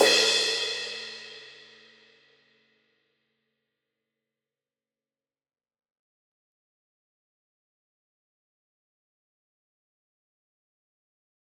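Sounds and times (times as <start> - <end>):
crash cymbal one-shot hit: 0.0 - 1.9.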